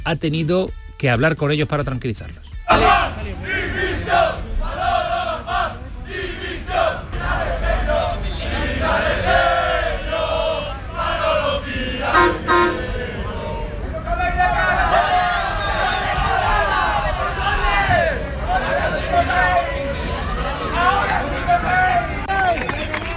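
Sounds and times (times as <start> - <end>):
speech: 0.0 - 3.8
large crowd of football fans shouting: 2.7 - 22.6
large crowd of football fans applauding: 22.2 - 23.1.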